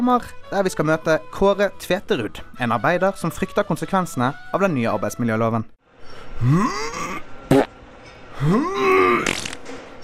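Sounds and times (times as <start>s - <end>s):
speech: 0.0s - 7.2s, 8.4s - 9.3s
drawn-out rising buzzy fart sounds: 7.5s - 7.8s
short sharp crack: 9.2s - 9.9s.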